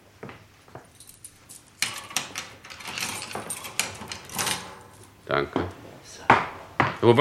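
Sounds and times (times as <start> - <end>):
metal gate rattling and clanking shut: 1.8 - 5.3.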